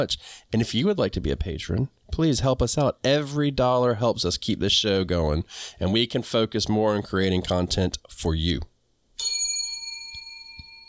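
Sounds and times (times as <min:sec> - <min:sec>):
speech: 0:00.0 - 0:08.7
bell being struck: 0:09.2 - 0:10.8.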